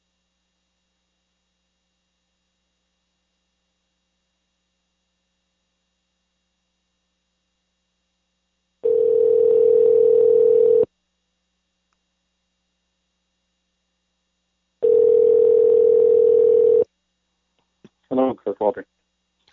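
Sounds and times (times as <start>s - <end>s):
telephone tones as a call is dialed out: 8.8s - 10.9s, 14.8s - 16.9s.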